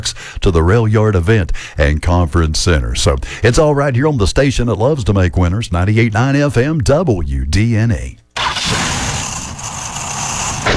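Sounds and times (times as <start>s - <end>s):
speech: 0.0s - 8.2s
old worn-out car engine running: 8.4s - 10.7s.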